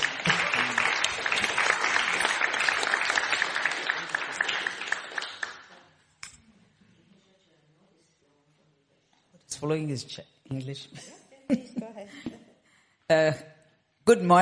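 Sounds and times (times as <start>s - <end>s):
audience applause: 0.0s - 5.8s
speech: 9.6s - 12.5s, 13.1s - 14.4s.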